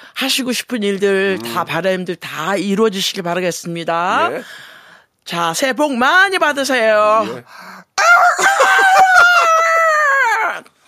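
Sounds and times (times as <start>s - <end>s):
speech: 0.0s - 4.7s, 5.3s - 8.5s
person imitating a rooster crowing: 1.3s - 1.7s, 8.0s - 10.7s.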